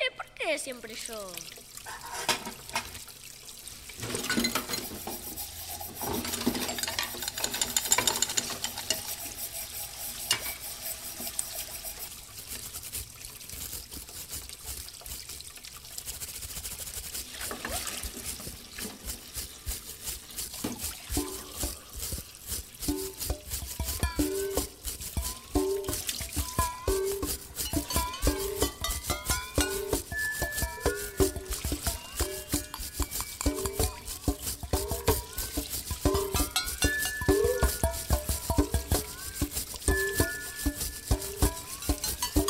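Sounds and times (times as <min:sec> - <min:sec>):
rhythmic music made from kitchen noises: 0:00.0 - 0:42.4
running, trickling water: 0:00.0 - 0:42.4
speech: 0:00.5 - 0:03.0
dishes clinking and clattering: 0:01.9 - 0:03.0, 0:04.0 - 0:12.0, 0:22.9 - 0:42.4.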